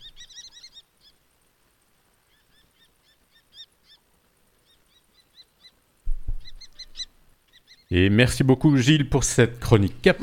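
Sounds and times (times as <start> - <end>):
common kestrel calling: 0.0 - 1.4, 2.2 - 8.0
speech: 7.9 - 10.2.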